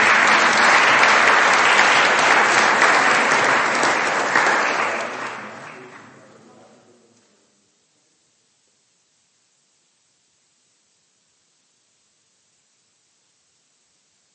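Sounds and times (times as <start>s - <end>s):
large group applauding for a birthday: 0.0s - 6.6s.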